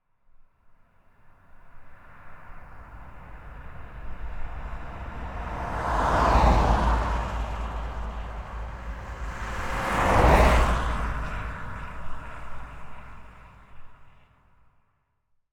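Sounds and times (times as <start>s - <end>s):
cars passing: 1.8s - 14.0s.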